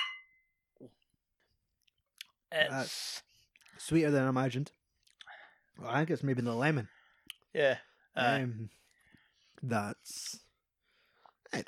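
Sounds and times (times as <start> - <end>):
glasses clinking in a toast: 0.0 - 0.4
speech: 2.5 - 4.8, 5.8 - 8.8, 9.6 - 10.4.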